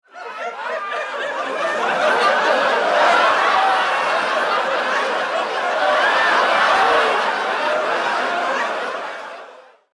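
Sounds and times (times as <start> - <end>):
audience laughing loudly: 0.0 - 9.9.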